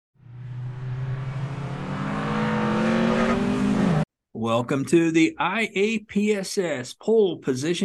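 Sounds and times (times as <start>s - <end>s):
race car engines revving: 0.2s - 4.1s
speech: 4.4s - 7.8s.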